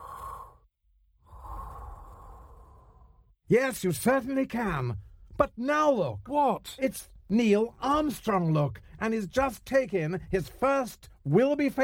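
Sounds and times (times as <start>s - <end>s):
heavy breathing through spacesuit breathing equipment: 0.0s - 0.7s, 1.3s - 3.3s
speech: 3.5s - 11.8s.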